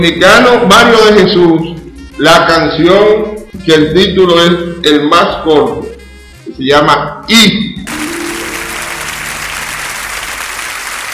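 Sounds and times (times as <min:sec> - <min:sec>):
speech: 0:00.0 - 0:05.9, 0:06.5 - 0:07.7
warm audience applause sending off a singer: 0:07.9 - 0:11.1.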